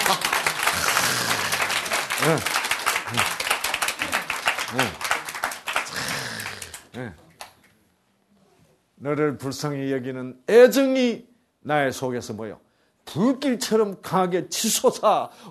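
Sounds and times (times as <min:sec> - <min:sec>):
crowd applause: 0:00.0 - 0:07.5
speech: 0:00.1 - 0:01.3, 0:02.2 - 0:03.4, 0:04.7 - 0:05.0, 0:06.9 - 0:07.2, 0:09.0 - 0:15.5.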